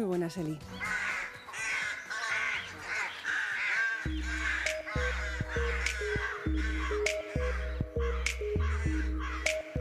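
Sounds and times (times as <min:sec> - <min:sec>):
speech: 0:00.0 - 0:01.0, 0:04.0 - 0:04.6
crows cawing: 0:00.7 - 0:09.7
deep steady musical bassline: 0:04.1 - 0:09.7.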